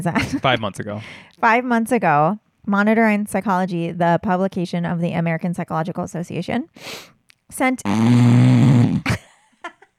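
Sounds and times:
speech: 0:00.0 - 0:09.2
loud rasping snore: 0:07.8 - 0:09.1.

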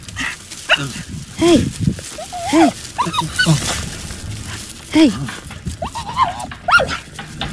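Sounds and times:
speech: 0:00.8 - 0:03.8, 0:04.9 - 0:05.4
dog whining and yowling: 0:02.2 - 0:03.8, 0:05.8 - 0:07.0.

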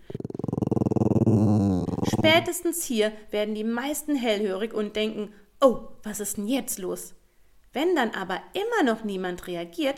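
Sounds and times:
dog growling: 0:00.0 - 0:02.5
speech: 0:02.2 - 0:09.9.

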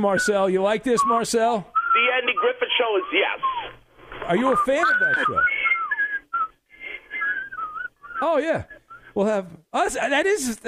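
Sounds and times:
speech: 0:00.0 - 0:03.5, 0:04.3 - 0:05.5, 0:08.2 - 0:10.6
man whistling a bouncy TV theme-song melody: 0:01.8 - 0:02.5, 0:04.5 - 0:09.1.

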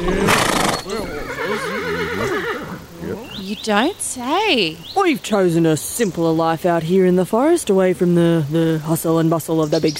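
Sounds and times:
horse whinnying: 0:00.0 - 0:02.9
speech: 0:03.6 - 0:09.9.

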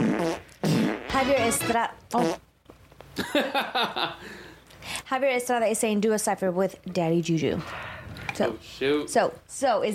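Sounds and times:
fart noises: 0:00.0 - 0:02.5
speech: 0:01.2 - 0:02.5, 0:03.2 - 0:09.9.

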